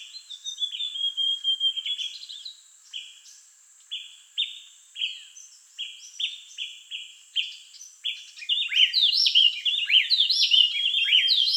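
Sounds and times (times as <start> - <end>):
Amazonian grosbeak Cyanoloxia rothschildii calling: 0.5 - 2.2, 8.4 - 11.5.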